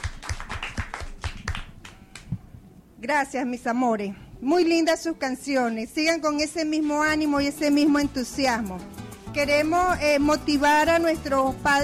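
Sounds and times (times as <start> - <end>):
faint applause for children at a school event: 0.0 - 2.4
speech: 3.0 - 11.8.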